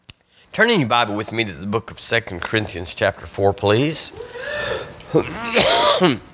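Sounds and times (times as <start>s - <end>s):
speech: 0.5s - 6.3s
light cough: 5.1s - 6.3s
man clearing his throat: 5.1s - 6.3s.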